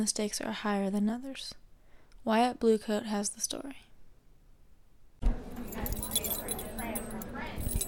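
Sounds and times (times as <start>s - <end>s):
speech: 0.0s - 1.6s, 2.2s - 3.9s
low hum: 0.0s - 7.8s
bunch of keys jangling: 5.6s - 7.8s.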